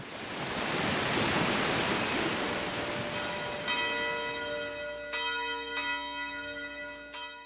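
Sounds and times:
steady rushing wind-like noise: 0.0 - 3.7
town hall tower bell ringing: 2.8 - 7.4.

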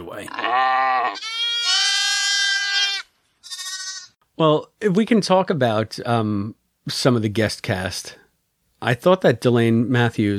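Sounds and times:
speech: 0.1 - 1.4, 4.4 - 8.2, 8.8 - 10.3
sheep bleating: 0.3 - 4.2.

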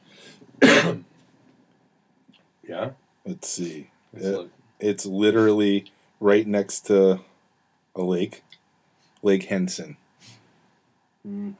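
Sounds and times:
throaty cough: 0.6 - 1.1
speech: 2.7 - 7.3, 8.0 - 8.5, 9.2 - 10.4, 11.2 - 11.5.

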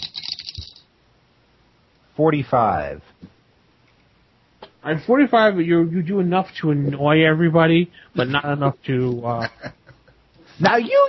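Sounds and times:
dice tumbling across a hard surface: 0.0 - 0.9
speech: 2.2 - 3.4, 4.8 - 9.8, 10.6 - 11.0.

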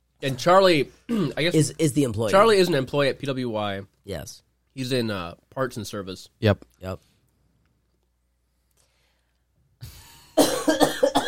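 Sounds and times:
speech: 0.2 - 7.1
person with a cold clearing throat: 1.1 - 1.5, 10.3 - 11.2.

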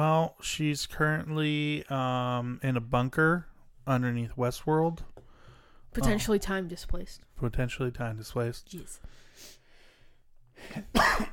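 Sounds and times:
speech: 0.0 - 5.1, 5.9 - 9.6, 10.6 - 11.0
loud cough: 10.7 - 11.3.

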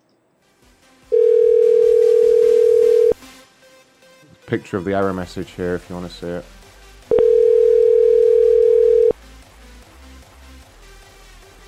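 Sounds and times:
phone call-screening tone beep: 1.2 - 3.2, 7.1 - 9.2
speech: 4.5 - 7.2.

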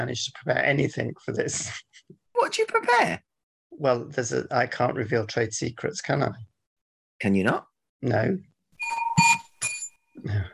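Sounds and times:
speech: 0.0 - 6.5, 7.2 - 9.0
bright metallic bell ringing: 8.8 - 10.0.

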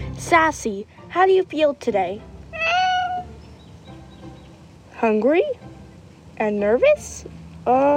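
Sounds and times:
speech: 0.2 - 2.3, 5.0 - 5.6, 6.4 - 7.9
domestic cat meowing: 2.5 - 3.5.

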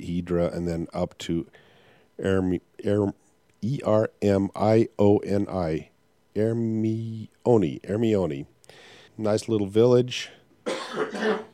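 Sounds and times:
speech: 0.0 - 11.5
harsh raspy cough: 10.6 - 11.5.

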